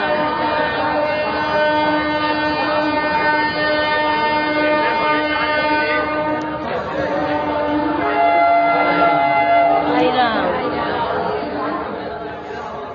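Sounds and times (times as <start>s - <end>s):
loud sustained droning rail noise at a railway station: 0.0s - 12.9s
pilgrims chattering in a busy railway station: 0.0s - 12.9s.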